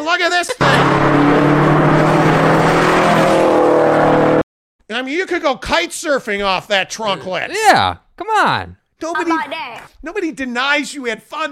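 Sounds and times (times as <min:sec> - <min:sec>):
speech: 0:00.0 - 0:01.8, 0:04.9 - 0:11.5
STI sports car engine roaring: 0:00.6 - 0:04.4.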